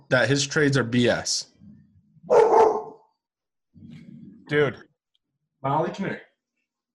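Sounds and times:
speech: 0.1 - 1.5, 4.5 - 4.9, 5.6 - 6.3
single loud dog bark: 2.3 - 3.1.

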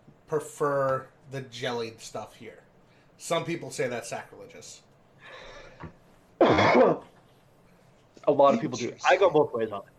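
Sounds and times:
speech: 0.3 - 2.6, 3.2 - 7.1, 8.2 - 9.9
person clearing throat: 6.4 - 7.2.

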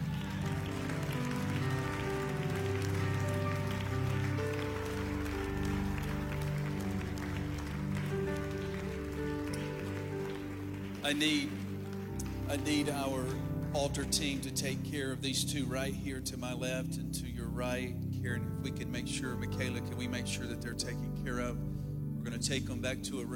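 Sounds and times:
crowd clapping: 0.0 - 15.0
sustained music: 0.0 - 23.3
speech: 11.1 - 11.6, 12.5 - 23.3.

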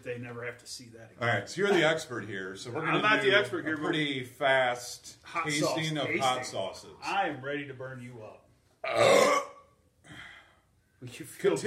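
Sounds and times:
speech: 0.1 - 9.5, 11.0 - 11.6
loud belch: 8.8 - 9.7.

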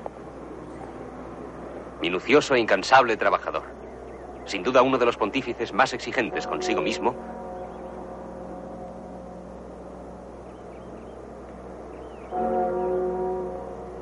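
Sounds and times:
speech: 2.0 - 3.8, 4.5 - 7.4
deep church bell at the Vatican tolling for the death of the Pope: 4.4 - 14.0.

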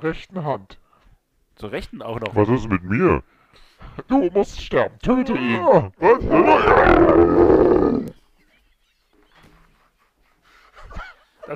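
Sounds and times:
speech: 0.0 - 0.8, 1.6 - 8.2
loud rumbling lion roar: 5.5 - 8.2.

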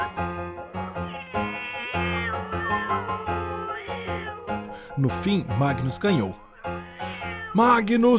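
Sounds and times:
cats meowing loudly while fighting each other: 1.0 - 4.7, 6.4 - 7.6
speech: 5.0 - 6.4, 7.6 - 8.1.

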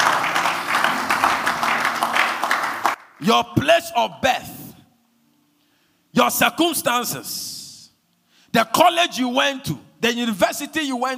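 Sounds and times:
crowd clapping as a clap offering to God: 0.0 - 3.2
speech: 3.2 - 4.6, 6.2 - 7.6, 8.5 - 11.1.

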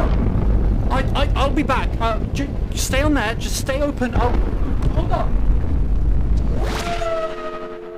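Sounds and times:
low rumble: 0.0 - 7.0
distant explosion: 0.0 - 7.7
speech: 1.1 - 5.5
sustained ringing tone: 6.8 - 7.9.

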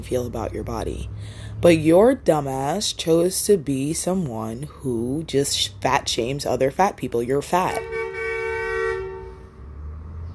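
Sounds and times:
speech: 0.0 - 8.0
low rumble of traffic: 0.0 - 10.3
car horn honking: 7.6 - 9.6.

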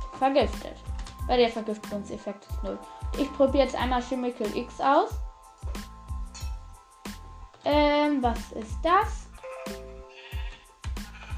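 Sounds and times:
speech: 0.2 - 5.2, 7.6 - 9.8
sheep bleating in a video game: 10.1 - 11.3.

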